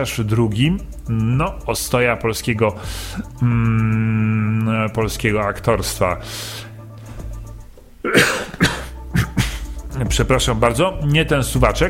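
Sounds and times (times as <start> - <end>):
speech: 0.0 - 6.7, 8.0 - 8.4, 10.0 - 11.8
man clearing his dry throat: 8.0 - 9.7.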